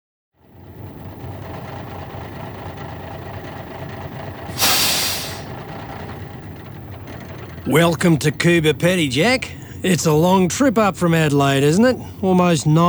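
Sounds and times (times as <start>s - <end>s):
bus idling at a bus station in Cooba Pedy, Australia: 0.4s - 12.8s
bus air brakes hissing: 4.4s - 5.9s
speech: 7.7s - 12.8s.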